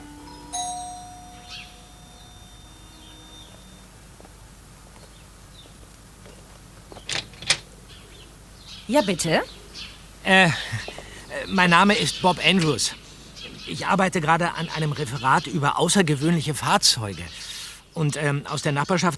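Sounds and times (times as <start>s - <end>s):
two-note doorbell ding-dong: 0.0s - 3.9s
speech: 8.9s - 9.6s, 10.2s - 13.0s, 13.7s - 19.1s.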